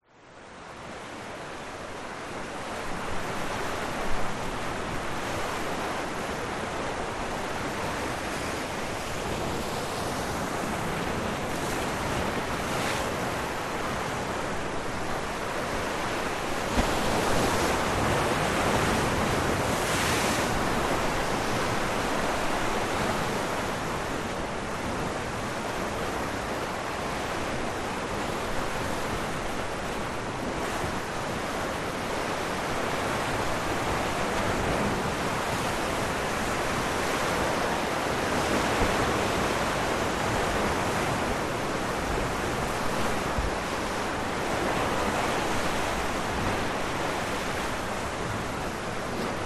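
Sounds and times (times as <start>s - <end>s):
sea waves crashing on rocks: 2.4s - 49.4s.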